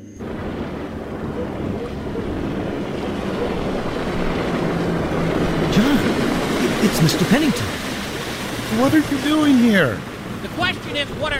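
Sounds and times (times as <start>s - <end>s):
motorboat engine droning over open water: 0.0s - 11.3s
wind over open water: 0.0s - 11.3s
water splashing: 0.2s - 11.3s
speech: 7.0s - 7.8s, 8.7s - 11.3s.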